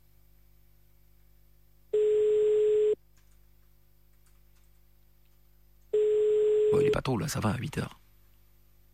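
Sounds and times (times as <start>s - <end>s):
telephone ringback tone while placing a call: 2.0s - 3.0s, 6.0s - 6.9s
speech: 7.1s - 8.0s.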